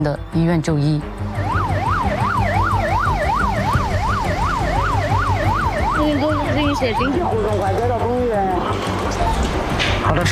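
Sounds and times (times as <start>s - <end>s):
speech: 0.0s - 1.3s, 6.0s - 10.3s
engine and traffic rumble: 0.0s - 10.3s
police motorcycle siren wailing and warbling: 1.2s - 9.7s.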